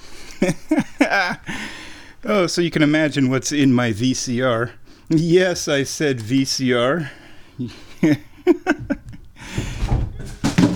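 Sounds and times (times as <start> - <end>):
short laughing vocal bursts: 0.4 - 1.6, 7.6 - 9.6
speech: 0.4 - 8.9
cat knocking items off a washing machine, thuds and rattling clatter: 9.5 - 10.7.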